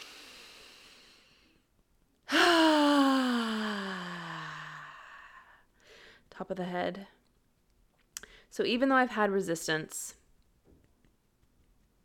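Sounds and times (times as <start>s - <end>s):
soft airy deep breath in during a guided EFT tapping exercise: 0.0s - 1.6s, 3.9s - 6.3s
loud voiced sigh with falling pitch: 2.3s - 5.6s
speech: 6.4s - 7.2s, 8.5s - 10.2s.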